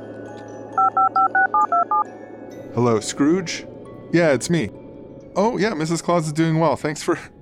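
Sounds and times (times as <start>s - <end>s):
touch-tone beeps from a telephone keypad being dialed: 0.8s - 2.0s
speech: 1.6s - 4.8s, 5.4s - 7.3s.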